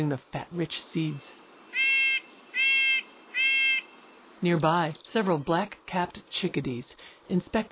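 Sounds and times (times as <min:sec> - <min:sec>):
speech: 0:00.0 - 0:01.9, 0:04.4 - 0:07.6
Red-breasted Nuthatch calling while hanging on a pine cone in autumn woods: 0:01.7 - 0:05.2.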